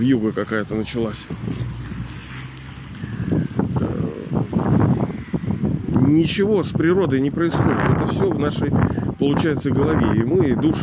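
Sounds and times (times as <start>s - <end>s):
speech: 0.0s - 1.8s, 6.1s - 10.8s
strong gusty wind with snow buffeting a microphone outdoors: 0.6s - 10.8s
vocal murmur: 1.2s - 5.9s.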